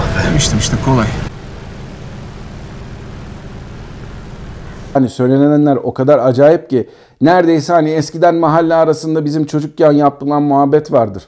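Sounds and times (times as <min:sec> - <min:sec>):
aircraft engine roar during takeoff: 0:00.0 - 0:04.9
speech: 0:00.4 - 0:01.3, 0:05.0 - 0:11.2.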